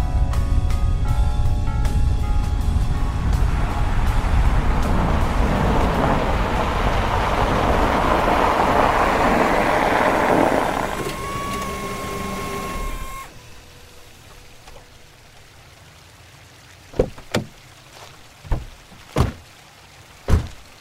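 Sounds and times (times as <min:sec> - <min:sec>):
car engine rumble while driving: 0:00.0 - 0:19.6
whining tone: 0:02.9 - 0:15.1.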